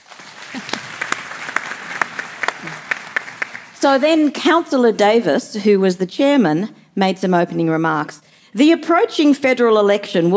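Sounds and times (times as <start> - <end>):
audience applause: 0.0 - 4.0
speech: 0.6 - 0.8, 3.8 - 10.3.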